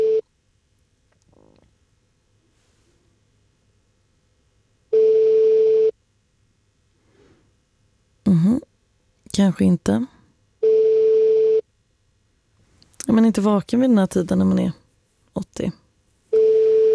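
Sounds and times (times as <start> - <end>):
telephone ringback tone on an unanswered early-morning call: 4.9 - 5.9, 10.6 - 11.6, 16.3 - 16.9
speech: 9.4 - 10.2, 13.2 - 14.8, 15.6 - 15.8.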